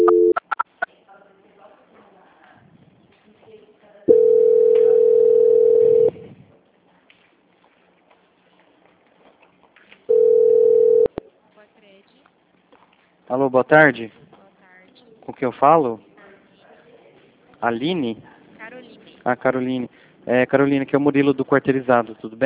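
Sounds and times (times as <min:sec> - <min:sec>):
telephone beeps during a call transfer: 0:00.0 - 0:00.6, 0:04.1 - 0:06.2, 0:10.1 - 0:11.2
faint noise: 0:00.0 - 0:22.4
speech: 0:13.6 - 0:14.3, 0:15.4 - 0:16.1, 0:17.6 - 0:18.3, 0:19.2 - 0:22.4.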